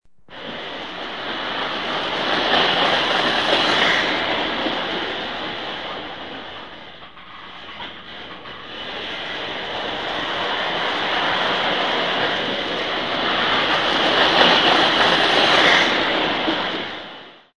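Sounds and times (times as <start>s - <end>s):
toy train: 0.4s - 17.4s.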